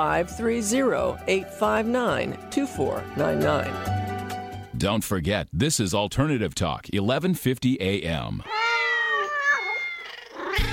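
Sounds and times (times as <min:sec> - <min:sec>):
speech: 0:00.0 - 0:04.0, 0:04.8 - 0:08.6
cats meowing: 0:08.4 - 0:10.7.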